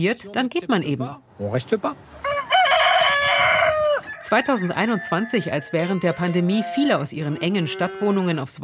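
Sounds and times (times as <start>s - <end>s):
speech: 0.0s - 2.3s, 4.3s - 8.6s
rooster crowing: 2.2s - 7.0s.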